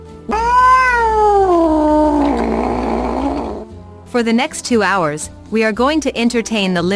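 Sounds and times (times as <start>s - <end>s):
cat meowing: 0.3s - 3.6s
speech: 4.1s - 6.9s.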